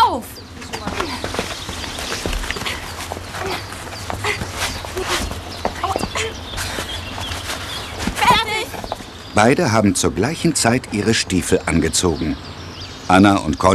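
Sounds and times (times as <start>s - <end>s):
girl's quick footsteps hurrying out through a door: 0.4s - 9.5s
busy clatter of knocks and scuffs: 0.7s - 9.2s
speech: 9.4s - 13.7s.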